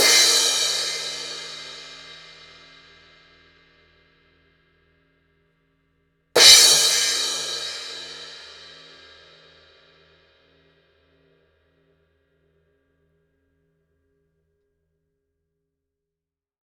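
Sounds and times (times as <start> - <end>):
cymbal crash: 0.0 - 2.5, 6.4 - 9.1.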